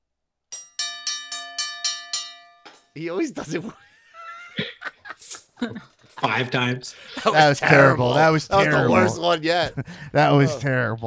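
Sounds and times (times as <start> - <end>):
hand bell ringing: 0.6 - 2.9
speech: 3.0 - 3.9, 5.2 - 11.0
laughter: 3.2 - 10.6.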